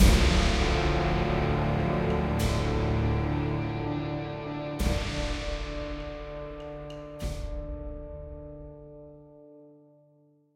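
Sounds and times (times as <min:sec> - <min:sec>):
ambient death stinger: 0:00.0 - 0:07.9.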